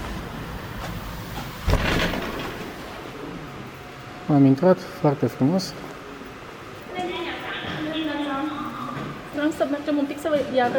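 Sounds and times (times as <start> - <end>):
steady low noise: 0.0 - 10.7
swinging door in a hotel pushed open: 1.6 - 2.9
speech: 4.3 - 5.9, 9.6 - 10.7.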